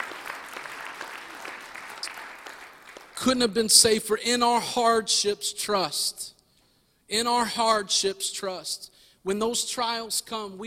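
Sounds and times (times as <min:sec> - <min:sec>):
congregation applauding: 0:00.0 - 0:03.5
speech: 0:03.2 - 0:06.3, 0:07.1 - 0:10.6.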